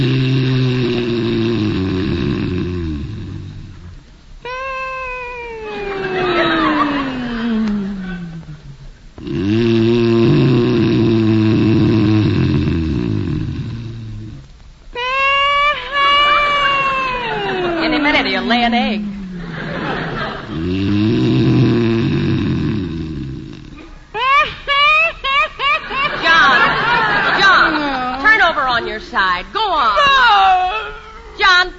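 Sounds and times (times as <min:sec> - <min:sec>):
man snoring loudly in bed: 0:00.0 - 0:03.9, 0:09.2 - 0:14.4, 0:20.4 - 0:23.8
laughter: 0:05.1 - 0:08.6, 0:15.0 - 0:20.6, 0:24.2 - 0:31.5.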